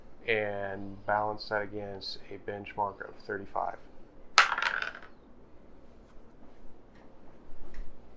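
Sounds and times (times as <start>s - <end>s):
speech: 0.3s - 3.9s
die rolled across a table: 4.4s - 5.2s.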